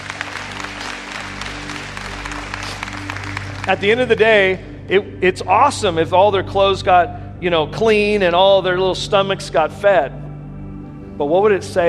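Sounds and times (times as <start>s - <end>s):
room full of people clapping: 0.0s - 4.6s
speech: 3.7s - 10.2s, 11.2s - 11.8s.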